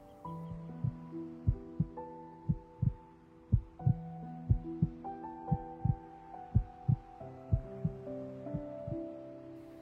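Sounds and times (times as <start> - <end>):
heartbeat: 0.8 - 6.0, 6.6 - 8.0, 8.6 - 9.0.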